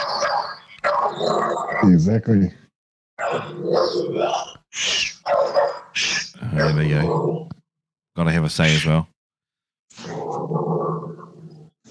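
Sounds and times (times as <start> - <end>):
dog stuck under a chair barking and growling: 0.0 - 1.9, 3.2 - 7.5, 9.9 - 11.7
speech: 1.1 - 2.6, 3.3 - 5.0, 6.5 - 7.5, 8.2 - 9.1.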